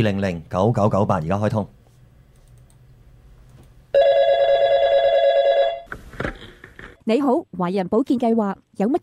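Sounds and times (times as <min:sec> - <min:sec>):
speech: 0:00.0 - 0:01.8, 0:07.1 - 0:09.0
loud electronic telephone ring with buzzing tone: 0:04.0 - 0:05.9.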